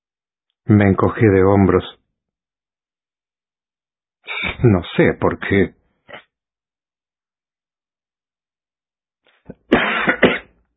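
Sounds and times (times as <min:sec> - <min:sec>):
speech: 0:00.7 - 0:02.0, 0:04.6 - 0:06.2
person giving a forced put-on cough: 0:09.5 - 0:10.6.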